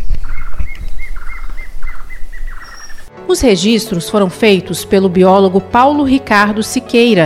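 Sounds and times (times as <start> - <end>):
plain antvireo singing: 0.0 - 3.1
speech: 3.3 - 7.2.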